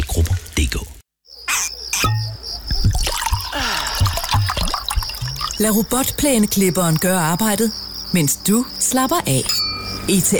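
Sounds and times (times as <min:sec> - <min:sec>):
water drips and small splashes: 0:00.0 - 0:00.6, 0:02.1 - 0:06.2
underground stream trickling and gurgling: 0:00.0 - 0:08.1
speech: 0:05.6 - 0:10.3.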